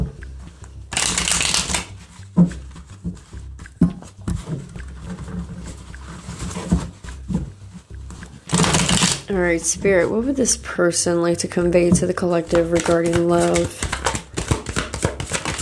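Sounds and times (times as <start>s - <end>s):
tarot cards being shuffled by hand: 0.0s - 4.8s, 6.2s - 9.9s, 12.5s - 15.5s
speech: 9.3s - 13.9s.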